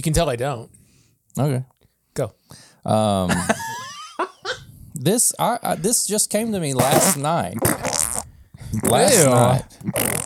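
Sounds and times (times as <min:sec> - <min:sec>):
speech: 0:00.0 - 0:00.8, 0:01.4 - 0:03.8, 0:05.0 - 0:07.9, 0:08.8 - 0:10.1
brief breathy mouth noises: 0:06.8 - 0:10.2
voice imitating a wet fart: 0:06.8 - 0:10.2.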